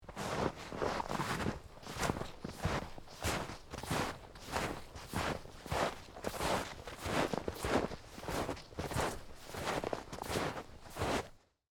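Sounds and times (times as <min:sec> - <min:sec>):
footsteps walking through deep snow in a forest: 0:00.0 - 0:11.4.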